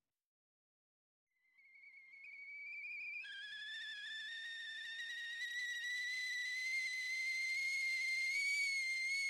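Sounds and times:
tea kettle whistling on the boil: 1.6 - 9.2.

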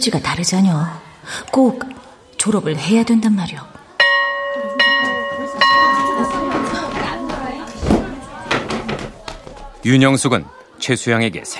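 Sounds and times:
speech: 0.0 - 3.8, 9.8 - 11.5
female students chattering and moving to their seats: 1.1 - 11.5
school bell chiming to signal the start of class: 4.0 - 9.1.

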